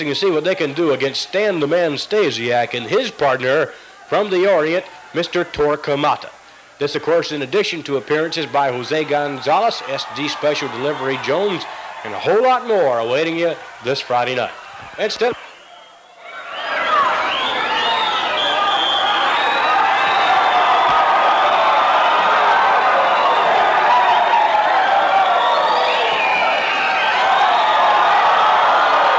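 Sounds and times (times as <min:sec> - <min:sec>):
speech: 0:00.0 - 0:15.4
crowd cheering at a wrestling arena: 0:00.0 - 0:29.1
capacity crowd roaring at a wrestling arena: 0:08.0 - 0:29.1
crowd shrill whistles: 0:14.5 - 0:29.1.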